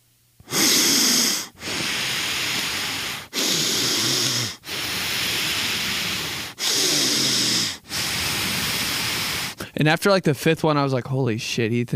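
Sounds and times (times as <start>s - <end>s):
man imitating wheezing whistling breathing while sleeping: 0.4s - 9.8s
speech: 9.8s - 11.9s.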